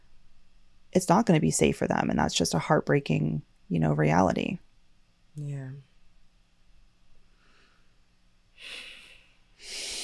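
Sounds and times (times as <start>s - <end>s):
speech: 1.0s - 4.6s, 5.4s - 5.9s
person taking a deep breath in and exhaling: 7.3s - 8.0s, 8.6s - 10.0s.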